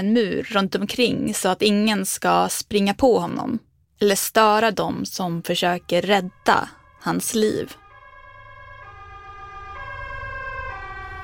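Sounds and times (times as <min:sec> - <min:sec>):
speech: 0:00.0 - 0:07.8
ambulance siren wailing: 0:05.3 - 0:11.2.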